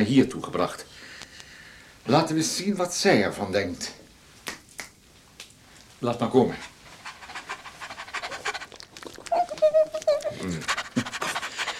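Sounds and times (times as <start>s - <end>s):
speech: 0.0s - 1.1s, 2.1s - 4.0s, 6.0s - 6.7s
small dog panting: 6.5s - 11.7s
small dog short high whine: 7.3s - 11.7s.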